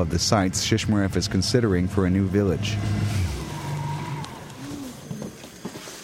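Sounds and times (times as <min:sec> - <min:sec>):
speech: 0:00.0 - 0:03.2
faint wind: 0:00.0 - 0:06.0
small boat outboard motor droning on a small river: 0:00.0 - 0:06.0.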